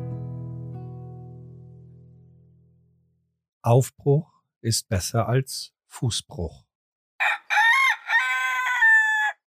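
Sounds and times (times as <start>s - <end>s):
speech: 3.6s - 6.7s
rooster crowing in a village: 7.2s - 9.4s.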